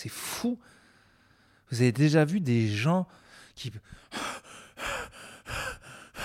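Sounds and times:
speech: 0.0s - 0.8s, 1.7s - 4.1s
voice imitating wheezy heavy breathing at rest: 4.0s - 6.2s.

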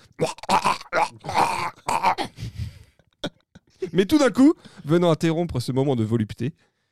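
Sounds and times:
voice making gurgling throaty mouth noises imitating feeding chewed seeds to a parrot: 0.0s - 3.4s
speech: 4.0s - 6.7s.

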